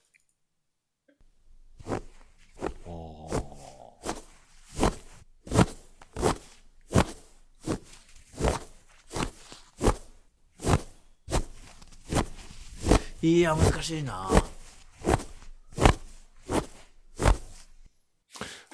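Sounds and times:
foley footsteps crunching on snow: 0:01.8 - 0:17.9
speech: 0:13.2 - 0:14.5.

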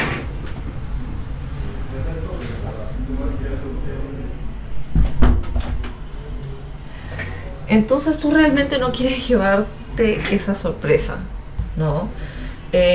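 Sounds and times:
indistinct talking: 0:00.0 - 0:12.9
room noise: 0:00.0 - 0:12.9
door pushed partway closed with wooden knocks and a creak: 0:04.9 - 0:06.0
speech: 0:07.7 - 0:12.9.

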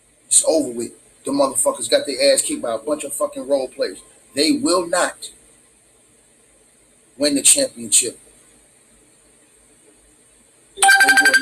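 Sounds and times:
speech: 0:00.3 - 0:05.4, 0:07.2 - 0:08.2
phone ringtone with bright repeating electronic melody: 0:10.8 - 0:11.4.

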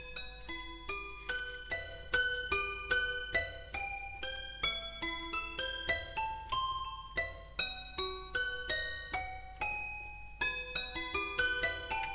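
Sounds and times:
toy piano melody: 0:00.1 - 0:12.1.

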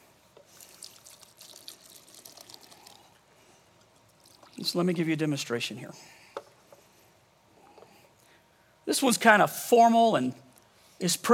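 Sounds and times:
wine pouring into a drinking glass: 0:00.5 - 0:03.2, 0:04.0 - 0:04.8
speech: 0:04.6 - 0:06.2, 0:09.0 - 0:10.4, 0:11.0 - 0:11.3.

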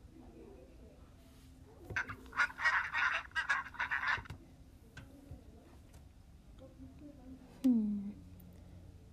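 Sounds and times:
video game duck character quacking: 0:02.0 - 0:04.3.

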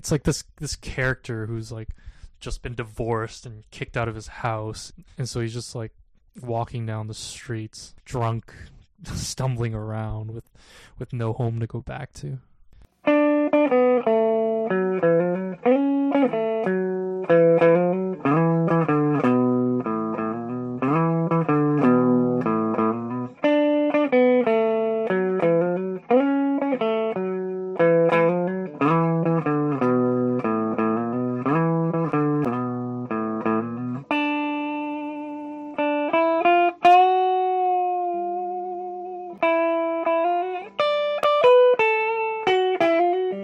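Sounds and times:
speech: 0:00.0 - 0:12.5
instrumental music with notes bent in quarter tones: 0:12.8 - 0:43.4.

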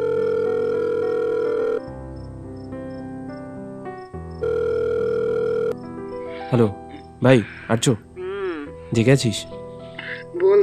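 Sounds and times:
electronic ringing tone of a mobile phone call being placed: 0:00.0 - 0:01.9, 0:04.4 - 0:05.8
speech: 0:06.5 - 0:08.1, 0:08.9 - 0:09.6.

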